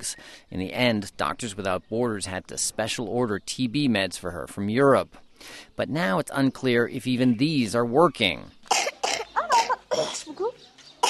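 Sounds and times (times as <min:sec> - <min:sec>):
speech: 0:00.0 - 0:08.9
person with tuberculosis coughing harshly at home: 0:08.7 - 0:10.3.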